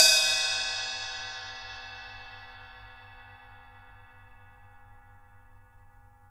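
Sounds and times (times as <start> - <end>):
acoustic jazz drum kit ride cymbal: 0.0 - 5.6.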